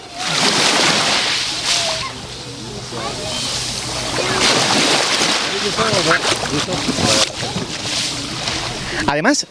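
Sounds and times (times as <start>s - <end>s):
Mediterranean sea waves lapping at beach shore: 0.0s - 9.4s
faint voices of people chattering: 0.0s - 9.4s
speech: 5.8s - 7.6s, 9.0s - 9.4s.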